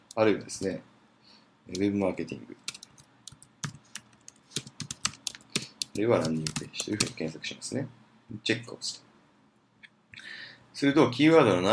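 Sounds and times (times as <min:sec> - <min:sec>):
speech: 0:00.2 - 0:00.9, 0:01.7 - 0:02.7, 0:06.0 - 0:09.1, 0:10.2 - 0:11.7
typing on a computer keyboard while entering keywords into a web tool: 0:02.6 - 0:07.2.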